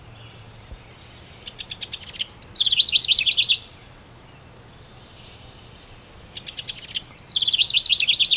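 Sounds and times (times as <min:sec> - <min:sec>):
house wren Troglodytes aedon song: 0:00.0 - 0:08.3.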